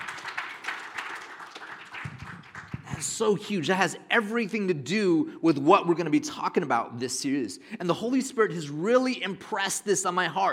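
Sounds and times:
audience applauding: 0.0s - 3.2s
speech: 3.0s - 10.5s.

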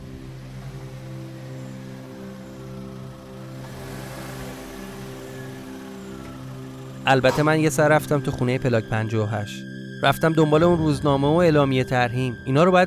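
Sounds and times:
car engine humming as the car is driven into a yard and parked: 0.0s - 9.1s
speech: 7.1s - 12.8s.

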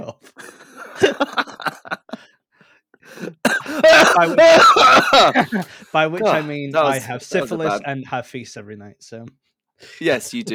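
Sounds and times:
laughter: 0.0s - 2.3s, 3.8s - 5.9s
short throaty coughs close to the mic: 3.4s - 5.6s
speech: 4.2s - 10.5s.

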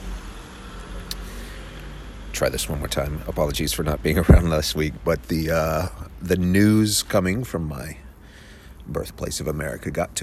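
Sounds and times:
car passing by: 0.0s - 4.5s
speech: 2.3s - 8.0s, 8.9s - 10.2s.

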